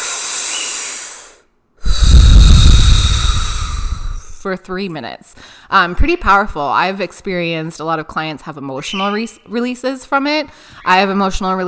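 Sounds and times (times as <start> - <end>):
deep powerful breaths in and out through the mouth during breathwork: 0.0 - 4.4
speech: 4.4 - 11.6.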